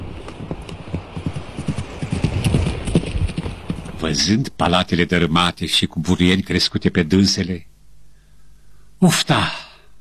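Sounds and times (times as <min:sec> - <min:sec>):
horse hooves galloping away: 0:00.0 - 0:04.3
speech: 0:04.0 - 0:07.7, 0:09.0 - 0:09.6.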